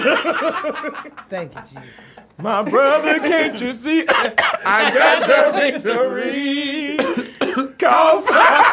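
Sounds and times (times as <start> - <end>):
laughter: 0.0 - 8.7
speech: 0.3 - 8.7
person coughing: 4.1 - 4.7, 7.0 - 7.8.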